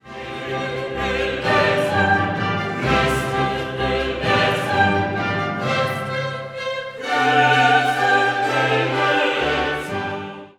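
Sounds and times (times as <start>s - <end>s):
Kyrie in a major key: 0.0s - 10.5s.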